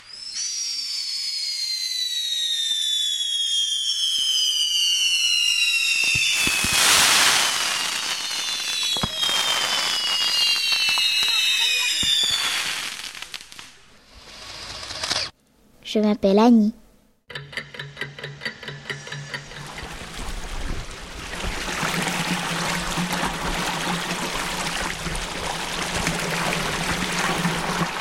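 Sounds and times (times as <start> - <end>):
fireworks whistling tones sliding downward, reworked from machine-gun fire: 0.0 - 13.0
fireworks crackling and popping, reworked from machine-gun fire: 0.0 - 15.4, 19.4 - 28.0
speech: 15.9 - 16.8.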